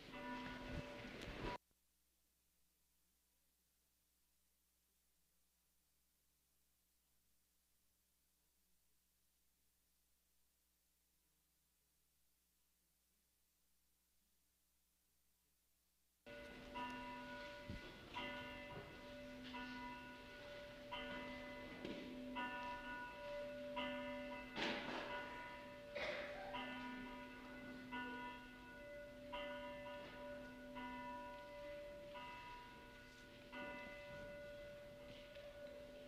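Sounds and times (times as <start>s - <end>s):
church bell ringing to call to worship: 0.0s - 1.6s, 16.3s - 36.0s.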